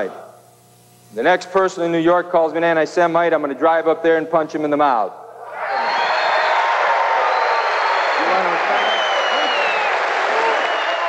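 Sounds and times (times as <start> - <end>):
speech: 0.0 - 0.2, 1.1 - 5.2
large crowd yelling and shouting: 5.4 - 11.0
large crowd laughing: 8.1 - 11.0.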